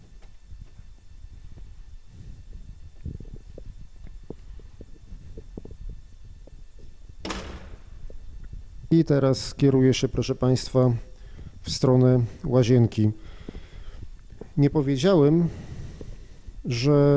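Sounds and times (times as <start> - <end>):
low rumble: 1.5 - 9.0
door being opened: 7.2 - 8.1
speech: 8.9 - 13.3, 14.6 - 15.7, 16.6 - 17.1.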